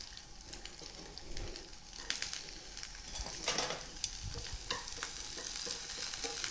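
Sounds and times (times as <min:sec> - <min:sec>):
komatsuna greens stir-frying in hot oil: 0:00.0 - 0:06.4.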